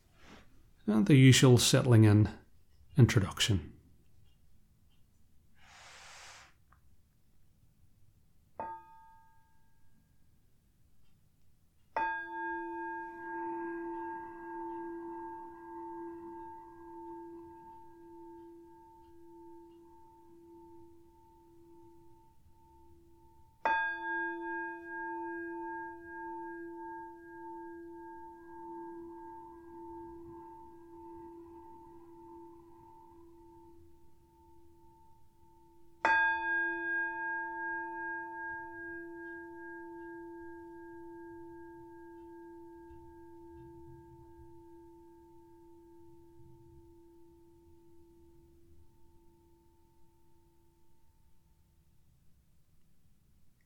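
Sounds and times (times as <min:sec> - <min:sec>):
speech: 0:00.9 - 0:02.4, 0:03.0 - 0:03.7
soft breathy rustle: 0:05.6 - 0:06.6
meditation bell ringing: 0:12.0 - 0:50.8.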